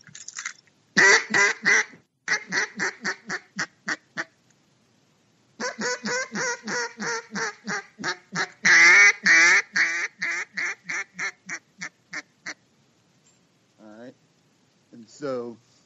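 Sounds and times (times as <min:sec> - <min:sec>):
duck call quacks blown in a cadence: 0:01.0 - 0:04.4, 0:05.6 - 0:12.6.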